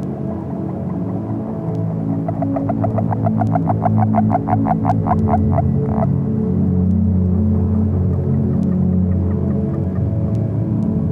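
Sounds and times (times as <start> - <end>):
low hum: 0.0 - 11.1
agile frog calling: 0.6 - 6.2.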